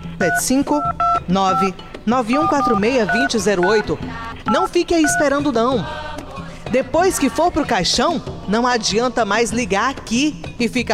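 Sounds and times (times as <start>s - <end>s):
telephone keypad dialing tones: 0.2s - 1.8s, 2.4s - 5.4s
speech: 0.2s - 6.0s, 6.7s - 10.9s.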